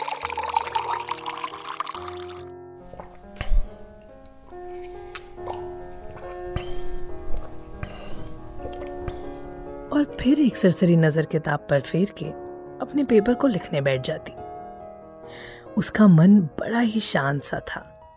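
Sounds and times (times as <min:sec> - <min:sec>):
water pouring into a glass: 0:00.0 - 0:02.5
speech: 0:10.0 - 0:14.4, 0:15.8 - 0:17.9.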